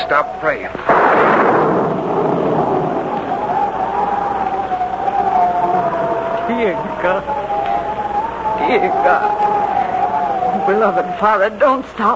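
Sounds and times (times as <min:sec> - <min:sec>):
thunder of an approaching storm: 0:00.0 - 0:12.1
wavering howl like storm wind: 0:00.0 - 0:12.1
speech: 0:00.1 - 0:01.8, 0:06.6 - 0:07.5, 0:08.7 - 0:09.6, 0:10.7 - 0:12.1.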